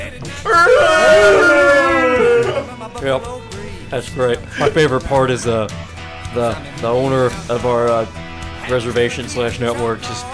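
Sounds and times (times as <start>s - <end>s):
person howling like a wolf: 0.4s - 2.8s
speech: 3.0s - 10.3s.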